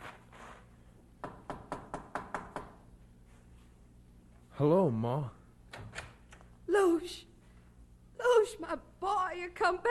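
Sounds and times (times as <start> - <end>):
quiet low hum: 0.0 - 9.8
sharp knocks on a door: 1.2 - 2.8
speech: 4.6 - 5.4, 6.8 - 7.3, 8.5 - 9.8.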